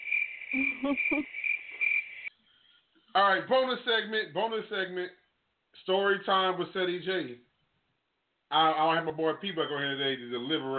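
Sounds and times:
steady high-pitched cricket chirp: 0.0s - 3.1s
speech: 0.5s - 1.4s, 3.2s - 5.2s, 5.8s - 7.5s, 8.5s - 10.7s.

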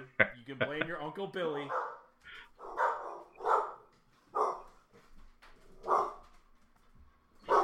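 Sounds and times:
speech: 0.2s - 1.9s
freshly woken dog barking: 1.7s - 4.7s, 5.8s - 6.3s, 7.4s - 7.6s.

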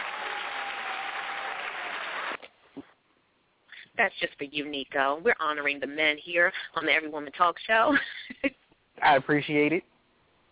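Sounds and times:
crowd applause: 0.0s - 2.4s
speech: 4.0s - 8.2s, 9.1s - 9.9s.

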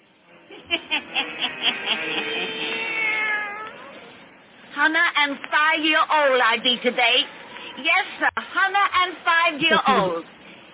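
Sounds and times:
laughter: 0.5s - 3.0s
black cat yowling: 1.7s - 4.1s
black cat meowing: 2.2s - 4.0s
speech: 4.9s - 10.4s.

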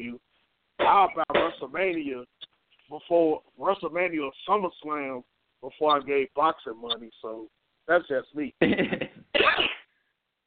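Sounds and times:
speech: 0.9s - 9.0s
sneeze: 9.4s - 9.9s.

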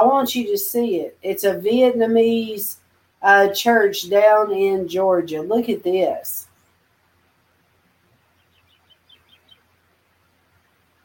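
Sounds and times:
speech: 0.0s - 6.5s
low steady hum: 0.0s - 11.0s
small birds chirping outdoors: 8.1s - 11.0s.

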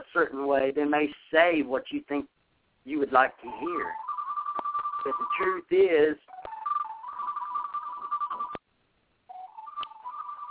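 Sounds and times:
speech: 0.1s - 4.1s, 5.0s - 6.4s
mobile phone ringing: 3.5s - 5.7s, 6.3s - 8.6s, 9.3s - 10.4s.

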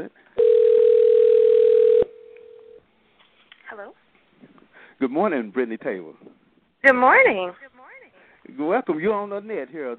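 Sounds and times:
speech: 0.0s - 0.2s, 5.0s - 7.7s, 8.5s - 9.9s
telephone dial tone while dialing a call: 0.4s - 2.8s.

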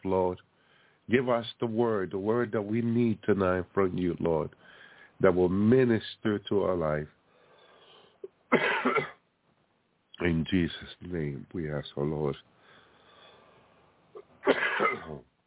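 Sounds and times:
speech: 0.0s - 0.5s, 1.1s - 7.2s, 8.5s - 9.1s, 10.2s - 12.6s, 14.4s - 15.3s
person coughing harshly: 8.5s - 9.2s, 14.2s - 15.2s.

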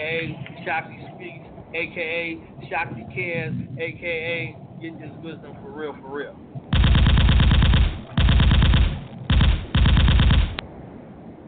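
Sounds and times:
speech: 0.2s - 6.6s
hand cannons gunfire sound effect, rapid automatic fire: 6.7s - 10.6s.

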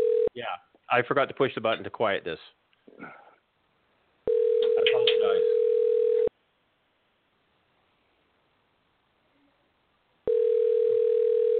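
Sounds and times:
electronic telephone dial tone: 0.0s - 0.3s, 4.3s - 6.3s, 10.3s - 11.5s
speech: 0.4s - 3.2s.

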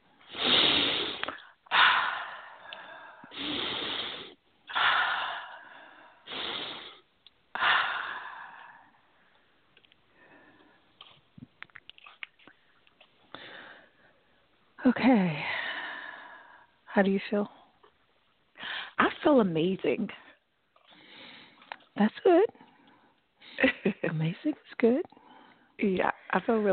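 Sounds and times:
deep breaths with long airy inhales and exhales: 0.2s - 11.0s, 13.3s - 14.5s, 15.4s - 16.8s, 18.6s - 19.0s, 20.3s - 21.9s, 25.1s - 25.8s
speech: 14.9s - 15.5s, 17.0s - 17.6s, 19.3s - 20.2s, 22.0s - 22.6s, 24.1s - 25.2s, 25.8s - 26.7s.

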